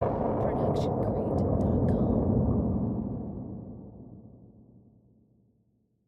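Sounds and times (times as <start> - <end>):
thundery explosion: 0.0 - 4.8.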